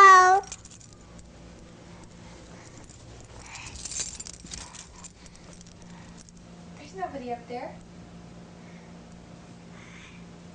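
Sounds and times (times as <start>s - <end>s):
keys jangling and clinking: 0.0s - 6.4s
speech: 7.3s - 7.9s.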